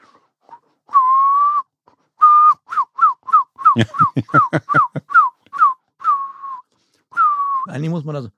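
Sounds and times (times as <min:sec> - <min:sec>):
person whistling an imitation of a herring gull call: 0:00.5 - 0:07.7
speech: 0:03.8 - 0:05.0, 0:07.8 - 0:08.3
laughter: 0:03.8 - 0:05.2.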